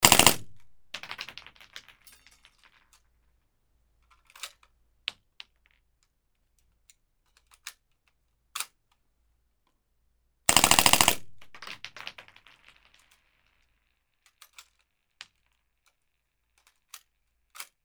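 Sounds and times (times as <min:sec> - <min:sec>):
silenced MP5 shots: 0:00.0 - 0:00.8, 0:10.5 - 0:11.9.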